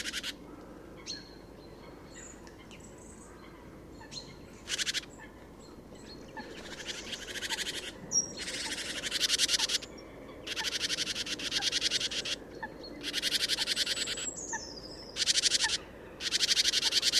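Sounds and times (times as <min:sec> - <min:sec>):
great tit (Parus major) scolding churrs: 0:04.6 - 0:05.1, 0:06.4 - 0:12.4, 0:13.0 - 0:17.1.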